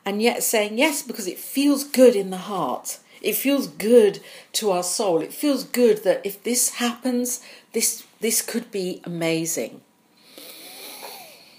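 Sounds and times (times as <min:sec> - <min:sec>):
speech: 0:00.1 - 0:09.9
person taking a slow deep breath: 0:10.2 - 0:11.5.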